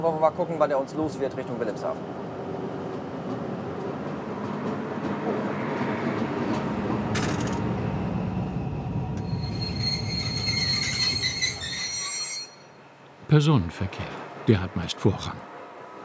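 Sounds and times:
speech: 0.0 - 2.4, 13.3 - 15.5
train rumbling as it rolls through a station toward Wilhelmshaven: 0.0 - 16.0
metal train wheels shrieking with a high-pitched squeal: 9.2 - 12.8.

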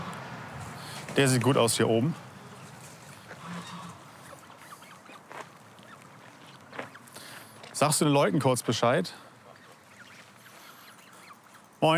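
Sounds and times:
speech: 1.2 - 2.3, 7.8 - 9.2
goose family with young birds honking: 2.2 - 7.7, 9.3 - 11.8.

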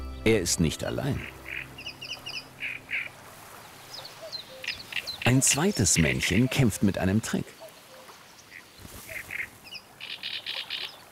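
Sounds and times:
great reed warbler singing a harsh, croaking song from reeds: 0.0 - 3.1, 3.8 - 11.0
speech: 0.2 - 1.4, 5.3 - 7.5.

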